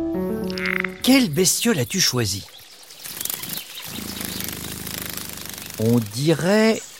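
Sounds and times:
soft outdoor hiss: 0.1 - 6.9
speech: 1.1 - 2.6, 5.8 - 6.9
dragonfly wings buzzing at the edge of a pond: 2.8 - 6.4.

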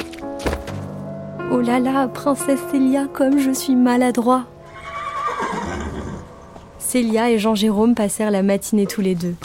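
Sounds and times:
speech: 1.5 - 4.5, 6.9 - 9.4
horse neighing: 4.7 - 6.3.

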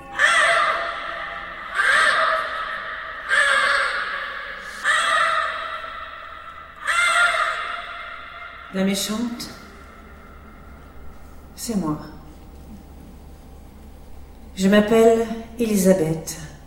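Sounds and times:
crow cawing: 0.0 - 10.9
speech: 8.8 - 9.6, 11.6 - 12.1, 14.6 - 16.4.

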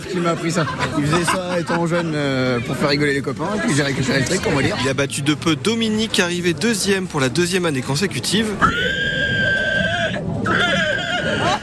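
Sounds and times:
laughter: 0.0 - 2.6, 9.9 - 11.6
speech: 0.1 - 9.2
person imitating a pig squeal at an amateur village contest: 8.6 - 11.6.

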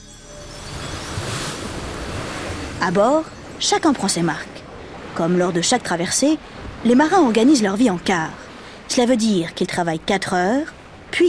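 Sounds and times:
blustery trade wind at sea: 0.0 - 11.2
ocean waves at sea: 0.0 - 11.2
speech: 2.8 - 4.6, 5.2 - 11.2.

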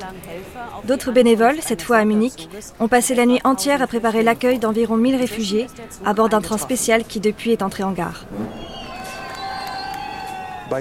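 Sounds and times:
speech: 0.0 - 8.8
crowd of residents cheering and clapping for arriving refugees: 8.6 - 10.7
high shouts: 8.6 - 10.7.

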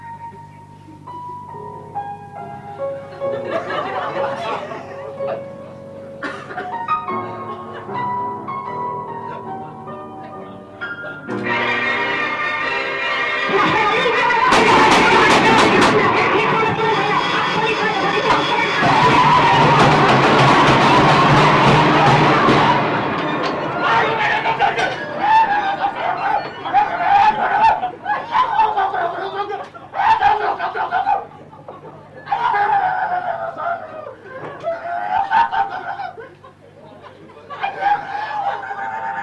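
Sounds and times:
struck piano tones: 0.0 - 29.4
laughter: 3.0 - 8.1, 11.0 - 39.2
broadcast-like sound: 11.3 - 28.0
clanging metal: 14.5 - 26.6.

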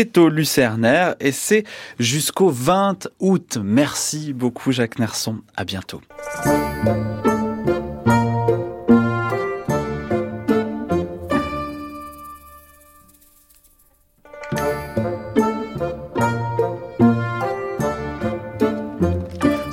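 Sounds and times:
speech: 0.0 - 7.3
brisk instrumental march with bouncy beat and bright ringing tones: 6.1 - 12.8, 14.2 - 19.7.

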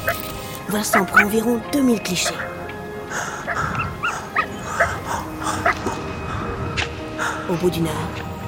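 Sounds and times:
speech: 0.1 - 3.2, 7.5 - 8.2
young arctic wolves on the tundra yipping and whimpering: 3.2 - 6.2.

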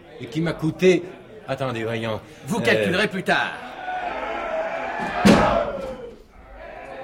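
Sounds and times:
speech: 0.2 - 3.7, 5.0 - 6.0
crowd shouting: 2.6 - 7.0
wooden beam slamming against a carved nail-studded oak door: 5.0 - 6.1.

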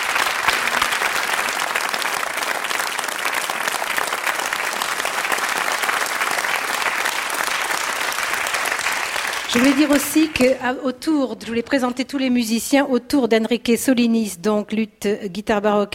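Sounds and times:
concert audience applauding warmly: 0.0 - 10.6
speech: 9.5 - 15.9.

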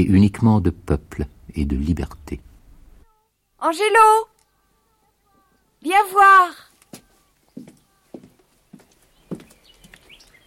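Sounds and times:
speech: 0.0 - 2.5, 3.6 - 4.3, 5.8 - 6.7
horse hooves clip-clopping at a slow walk: 6.7 - 10.4.

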